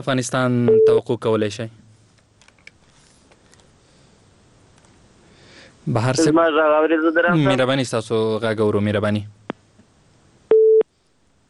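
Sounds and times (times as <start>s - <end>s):
speech: 0.0s - 1.8s, 5.9s - 9.4s
busy signal tone from a dropped telephone connection: 10.5s - 10.8s.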